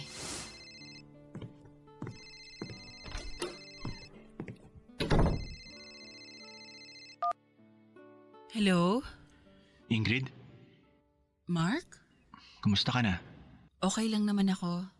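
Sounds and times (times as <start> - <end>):
telephone ringing with electronic tones: 0.5 - 1.2, 2.0 - 4.2, 5.4 - 7.4
speech: 8.6 - 9.2, 9.9 - 10.4, 11.5 - 12.0, 12.6 - 14.9.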